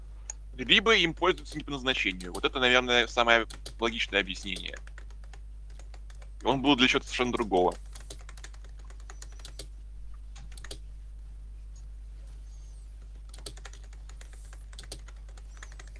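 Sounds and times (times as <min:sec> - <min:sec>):
low electrical hum: 0:00.0 - 0:15.9
speech: 0:00.6 - 0:04.9, 0:06.4 - 0:07.8
typing on a computer keyboard: 0:01.3 - 0:02.5, 0:03.4 - 0:06.6, 0:07.2 - 0:09.7, 0:10.3 - 0:10.8, 0:13.0 - 0:15.9.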